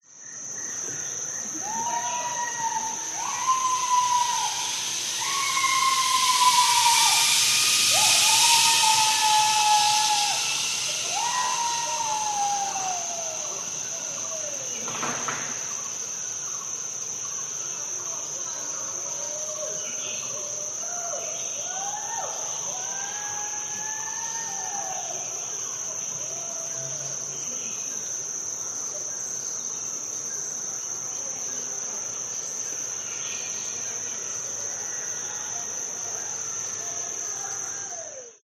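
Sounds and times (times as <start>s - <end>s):
zip line through jungle in Thailand: 1.6s - 14.2s.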